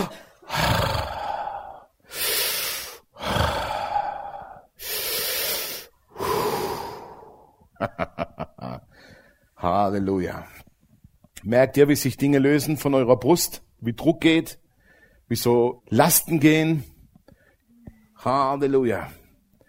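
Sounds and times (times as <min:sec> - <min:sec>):
person taking deep breaths through an open mouth during a prayer session: 0:00.4 - 0:07.7
speech: 0:09.8 - 0:10.6, 0:11.4 - 0:14.6, 0:15.3 - 0:16.9, 0:18.2 - 0:19.2.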